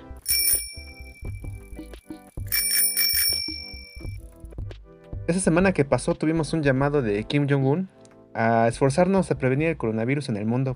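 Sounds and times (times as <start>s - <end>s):
bright metallic bell ringing: 0.0s - 4.2s
speech: 5.3s - 10.7s.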